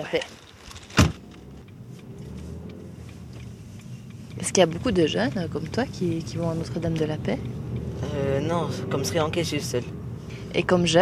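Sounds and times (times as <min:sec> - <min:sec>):
speech: 0:00.0 - 0:00.4, 0:04.4 - 0:07.6, 0:08.3 - 0:11.0
car engine rumble heard from inside the car: 0:00.0 - 0:11.0
car door shutting: 0:00.7 - 0:02.6.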